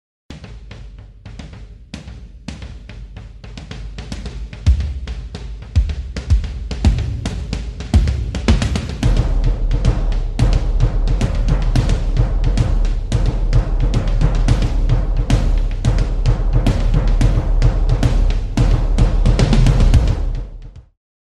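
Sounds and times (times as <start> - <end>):
drum sample: 2.8 - 20.9.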